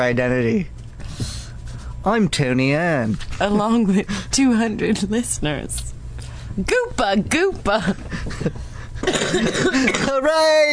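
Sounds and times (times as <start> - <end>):
speech: 0.0 - 0.8, 2.0 - 5.9, 6.6 - 10.7
harsh rattling smoker's cough: 8.9 - 10.2.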